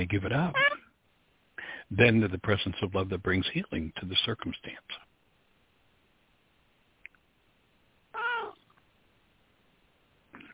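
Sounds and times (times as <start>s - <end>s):
speech: 0.0s - 0.7s, 1.9s - 5.1s
male kitten meowing: 0.5s - 0.8s, 8.2s - 8.6s
short soft cat sounds: 0.5s - 0.9s, 8.1s - 8.8s.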